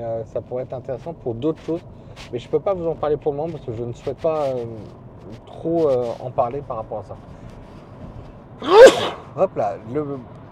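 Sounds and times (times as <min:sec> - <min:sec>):
speech: 0:00.0 - 0:07.3, 0:08.6 - 0:10.4
person sneezing: 0:08.6 - 0:09.3.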